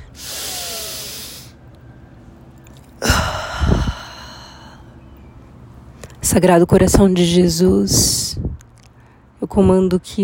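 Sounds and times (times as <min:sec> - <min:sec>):
deep breath in and out: 0:00.0 - 0:01.6, 0:03.0 - 0:05.0
speech: 0:06.3 - 0:08.6, 0:09.5 - 0:10.2.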